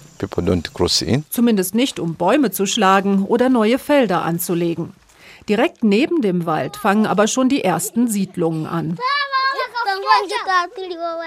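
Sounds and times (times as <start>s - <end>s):
speech: 0.2s - 9.2s, 10.1s - 11.2s
children chattering and calling out while playing on a village square: 6.3s - 11.2s.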